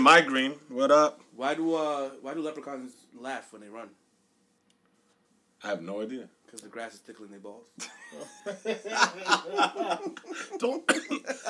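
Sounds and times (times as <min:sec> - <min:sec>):
speech: 0:00.0 - 0:04.0, 0:05.6 - 0:11.4
laughter: 0:07.8 - 0:11.4
loud sputtering coughs with a choking laugh-like edge: 0:10.5 - 0:11.3.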